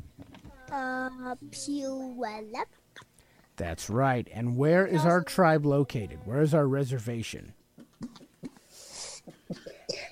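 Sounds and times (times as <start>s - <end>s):
speech: 0.7s - 7.6s
person coughing: 9.1s - 10.1s.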